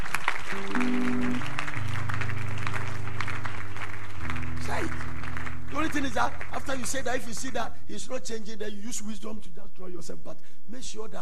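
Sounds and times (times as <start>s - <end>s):
Christian audience clapping: 0.0s - 7.7s
sustained keyboard or organ chords: 0.5s - 6.1s
speech: 6.0s - 11.2s.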